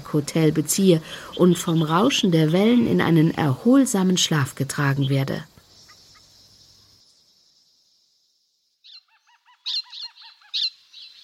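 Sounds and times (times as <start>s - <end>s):
speech: 0.1s - 5.5s
birds screeching excitedly in the morning: 1.0s - 3.3s, 4.8s - 7.1s, 8.8s - 11.2s.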